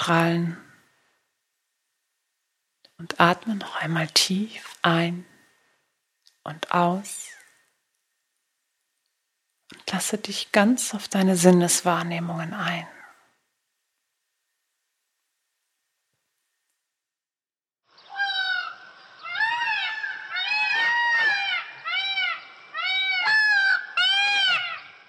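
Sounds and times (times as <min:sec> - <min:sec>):
speech: 0:00.0 - 0:00.6, 0:03.0 - 0:05.3, 0:06.4 - 0:07.3, 0:09.7 - 0:13.0
peacock calling: 0:17.9 - 0:25.0.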